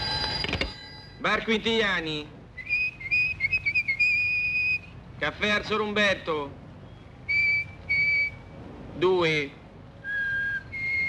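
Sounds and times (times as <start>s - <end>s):
speech: 1.2s - 2.4s, 5.2s - 6.6s, 9.0s - 9.6s
person whistling to communicate: 2.6s - 4.9s, 7.3s - 8.4s, 10.0s - 11.0s.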